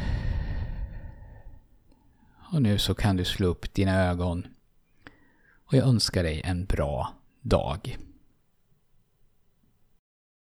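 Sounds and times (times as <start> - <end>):
slow breathy exhale: 0.0 - 2.4, 5.0 - 5.6
speech: 2.5 - 4.6, 5.7 - 8.1.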